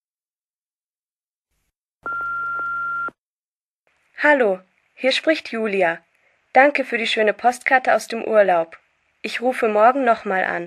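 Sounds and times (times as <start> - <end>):
telephone answering machine electronic beep: 2.1 - 3.2
speech: 4.2 - 10.6.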